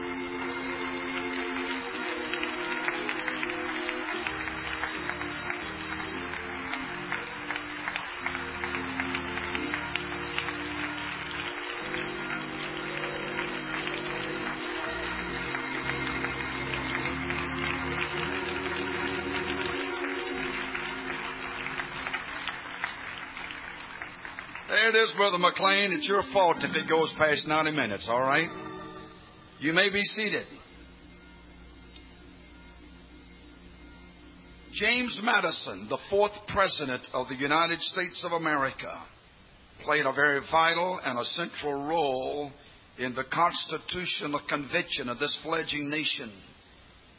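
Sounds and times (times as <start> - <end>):
large group clapping to worship music: 0.0 - 29.0
worship music: 0.0 - 46.9
speech: 24.9 - 28.6, 29.6 - 30.6, 34.8 - 39.2, 39.8 - 46.5.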